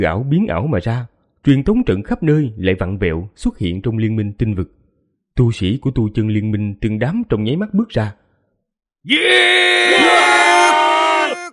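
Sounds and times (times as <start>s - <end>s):
speech: 0.0s - 4.8s, 5.4s - 8.2s, 9.0s - 10.2s
earth-shaking scream: 9.1s - 11.5s.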